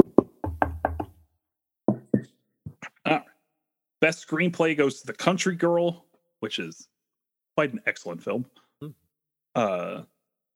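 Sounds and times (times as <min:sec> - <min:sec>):
knuckles rapping on a wooden surface: 0:00.0 - 0:01.2
speech: 0:04.0 - 0:06.9, 0:07.6 - 0:09.0, 0:09.6 - 0:10.1.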